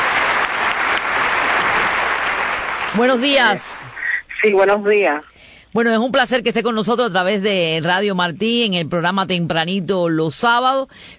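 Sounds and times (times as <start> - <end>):
audience applause for two guests on a morning show: 0.0 - 4.1
speech: 3.0 - 11.1.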